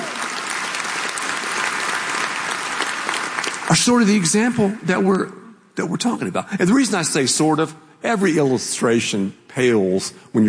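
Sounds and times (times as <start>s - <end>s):
audience applause at a talk: 0.0s - 4.7s
speech: 3.7s - 10.4s.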